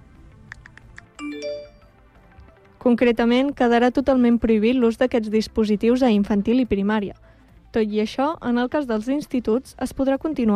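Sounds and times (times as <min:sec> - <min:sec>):
tapping clicks of typing on a mobile phone: 0:00.5 - 0:01.6
bright electronic phone notification chime: 0:01.2 - 0:02.0
speech: 0:02.8 - 0:10.5.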